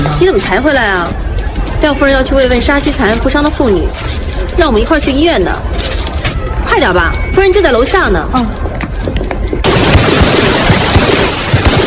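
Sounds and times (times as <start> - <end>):
speech: 0.2 - 5.9, 6.7 - 9.2
rifle fire from a line of cadets at a military academy range: 9.6 - 11.8.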